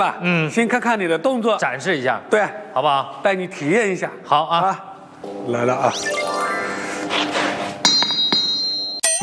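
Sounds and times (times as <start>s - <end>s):
speech: 0.0s - 6.2s
workshop noise and hum: 6.0s - 9.0s
forging hammer tapping an anvil as a signal: 7.8s - 9.1s.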